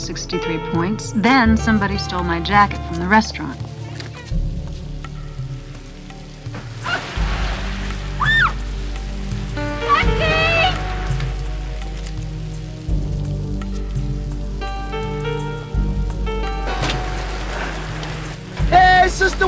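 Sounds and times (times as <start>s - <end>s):
speech: 0.0s - 3.7s
rain falling: 0.0s - 19.4s
squeaky tonal sounds: 9.6s - 11.0s.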